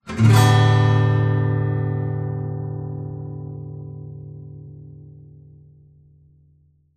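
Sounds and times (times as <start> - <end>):
out of tune steel-string guitar strumming: 0.0 - 6.6.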